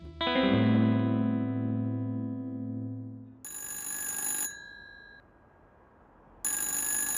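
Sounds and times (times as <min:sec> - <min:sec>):
sustained electronic chord: 0:00.0 - 0:03.4
telephone ringing metallically: 0:03.4 - 0:05.3, 0:06.5 - 0:07.1.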